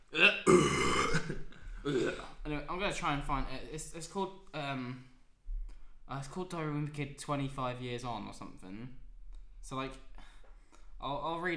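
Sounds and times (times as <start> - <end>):
burp into microphone: 0.1 - 2.4
speech: 2.9 - 5.1, 6.1 - 9.0, 9.6 - 10.1, 11.0 - 11.5.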